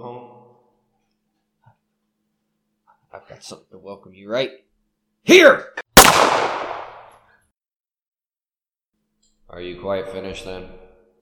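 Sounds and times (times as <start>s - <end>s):
speech: 3.2s - 5.8s, 9.5s - 10.8s
gunshot: 6.0s - 7.2s.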